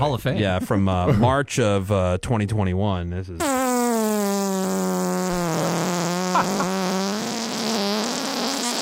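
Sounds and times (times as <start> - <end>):
speech: 0.0 - 3.6, 6.4 - 6.7
long fart sound from a squeezed farting butt toy: 3.4 - 8.8.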